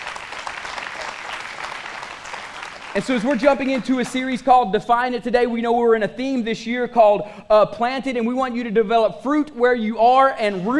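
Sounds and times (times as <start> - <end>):
large group applauding: 0.0 - 4.4
speech: 2.9 - 10.7.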